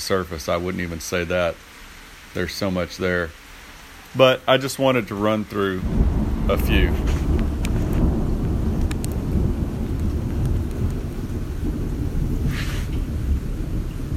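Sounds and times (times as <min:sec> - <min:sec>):
speech: 0:00.0 - 0:03.4, 0:04.1 - 0:07.2
faint rain during a storm: 0:00.0 - 0:14.1
thunder rumbling during a storm: 0:05.8 - 0:14.1.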